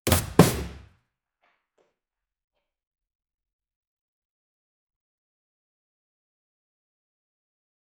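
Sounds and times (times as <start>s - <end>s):
quick whip sound in a comedic skit: 0.1s - 0.8s.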